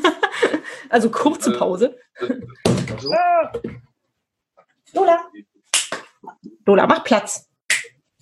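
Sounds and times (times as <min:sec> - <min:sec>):
speech: 0:00.9 - 0:03.9, 0:04.9 - 0:05.5, 0:06.2 - 0:07.5
dull door thump: 0:02.6 - 0:03.8.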